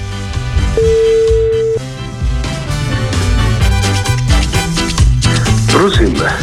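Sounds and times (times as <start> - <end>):
loud busy music: 0.0 - 6.4
telephone ringing tone: 0.8 - 1.8.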